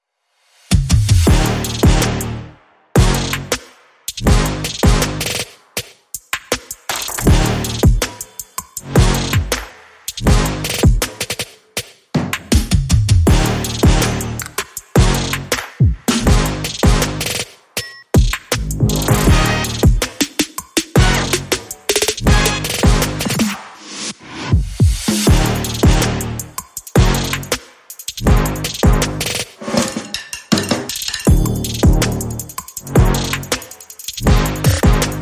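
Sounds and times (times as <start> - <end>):
drums: 0.5 - 35.2
brass instruments: 1.0 - 5.7, 7.1 - 11.3, 13.3 - 17.6, 18.6 - 20.4, 21.0 - 23.9, 25.0 - 30.0, 31.3 - 35.2.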